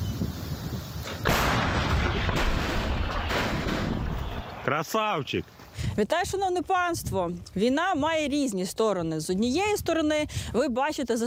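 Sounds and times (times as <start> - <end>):
artillery gun firing a shot: 1.2 - 4.6
speech: 4.7 - 11.2.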